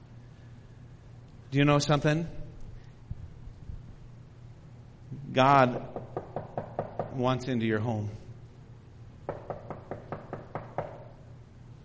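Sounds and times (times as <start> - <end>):
speech: 1.5 - 2.4, 5.3 - 5.9, 7.2 - 8.2
firm knocking on a wooden door: 5.7 - 7.2, 9.3 - 11.1.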